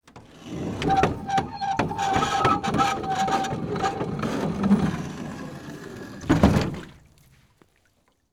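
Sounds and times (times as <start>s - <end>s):
rowing boat pushing water: 0.0s - 7.9s.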